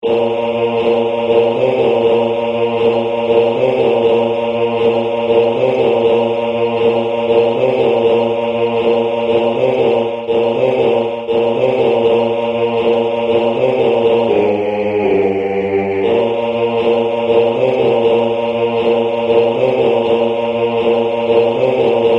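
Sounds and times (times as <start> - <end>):
baritone singing: 0.0 - 22.1.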